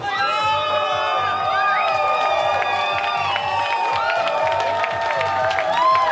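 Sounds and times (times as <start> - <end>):
large crowd of party members cheering at an election night party: 0.0 - 6.0
many voices shouting and whooping at an election night party: 0.0 - 6.0.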